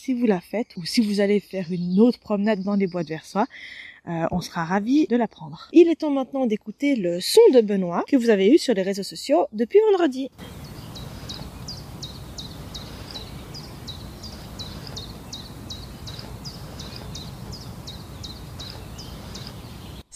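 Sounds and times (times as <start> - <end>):
speech: 0.0 - 10.7
common chiffchaff singing: 10.4 - 20.1.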